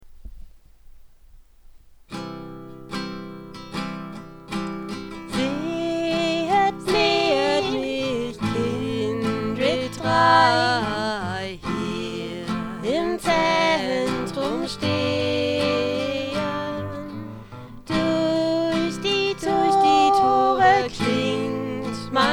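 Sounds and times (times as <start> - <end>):
two-part singing: 5.3 - 22.3.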